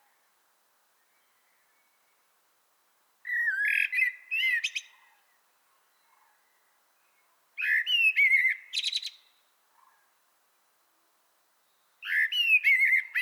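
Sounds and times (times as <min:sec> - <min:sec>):
common blackbird Turdus merula fluty song: 0:01.0 - 0:02.3, 0:03.2 - 0:10.1, 0:11.6 - 0:13.2.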